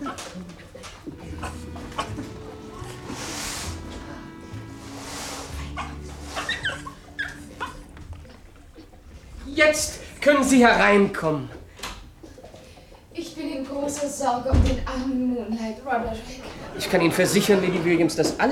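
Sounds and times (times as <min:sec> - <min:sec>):
laughter: 0:00.0 - 0:08.4, 0:16.2 - 0:18.5
rustling: 0:00.0 - 0:13.1
low noise: 0:00.0 - 0:18.5
sick dog barking and whimpering: 0:05.6 - 0:08.4
speech: 0:09.6 - 0:11.6, 0:14.2 - 0:18.5.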